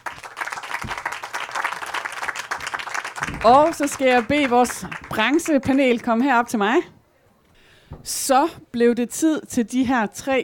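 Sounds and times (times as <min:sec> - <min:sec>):
audience applause: 0:00.0 - 0:06.2
speech: 0:03.4 - 0:07.0, 0:08.0 - 0:10.4.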